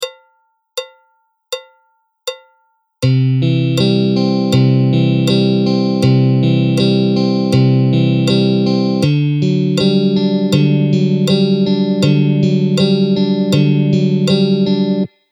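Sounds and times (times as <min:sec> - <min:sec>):
guitar arpeggio phrase: 0:03.0 - 0:15.1.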